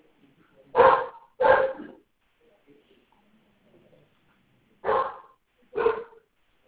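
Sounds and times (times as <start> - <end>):
golden doodle dog barking: 0.7 - 2.0, 4.8 - 6.3.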